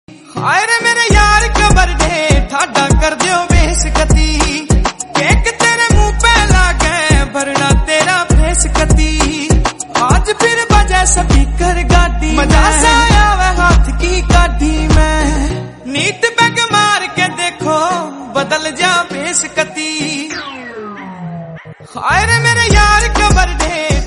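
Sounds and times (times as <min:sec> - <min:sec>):
Haryanvi song: 0:00.5 - 0:24.0.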